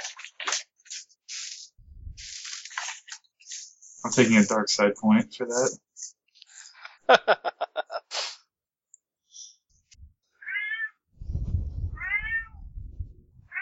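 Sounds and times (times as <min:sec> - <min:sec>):
low rumbling background: 0:01.8 - 0:02.3, 0:11.2 - 0:13.5
speech: 0:04.0 - 0:05.9, 0:07.1 - 0:07.5
laughter: 0:06.7 - 0:08.1
cat meowing: 0:10.4 - 0:11.0, 0:12.0 - 0:12.7, 0:13.4 - 0:13.6
chirpy stuttering cat calls: 0:10.4 - 0:11.0, 0:13.5 - 0:13.6.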